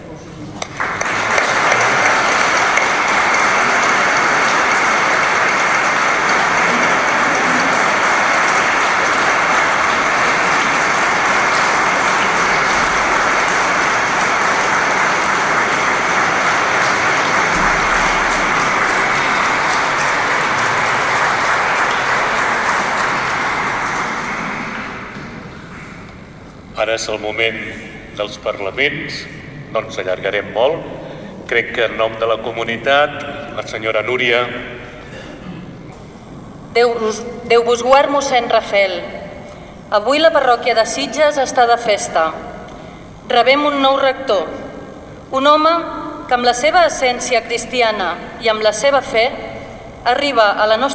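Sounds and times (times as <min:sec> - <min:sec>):
audience applause at a church ceremony installing a new parish rector: 0:00.6 - 0:26.0
speech: 0:27.0 - 0:34.7, 0:36.8 - 0:39.2, 0:39.9 - 0:42.5, 0:43.3 - 0:44.6, 0:45.3 - 0:50.9.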